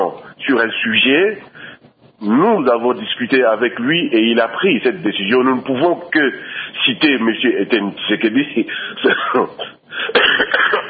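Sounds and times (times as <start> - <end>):
speech: 0.1 - 1.6, 2.2 - 10.2
man with flu coughing: 8.9 - 10.8
man with flu clearing his throat: 9.0 - 10.8.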